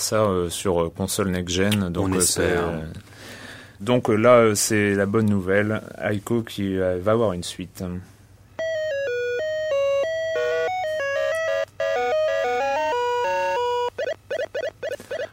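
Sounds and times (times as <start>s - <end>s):
speech: 0.0s - 8.1s
short warbling electronic chirps: 8.6s - 15.3s
video game tune: 8.6s - 15.3s.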